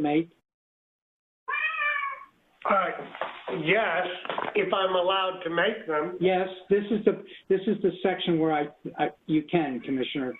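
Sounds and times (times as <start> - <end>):
speech: 0.0 - 0.4, 2.6 - 10.3
cat meowing: 1.5 - 2.4.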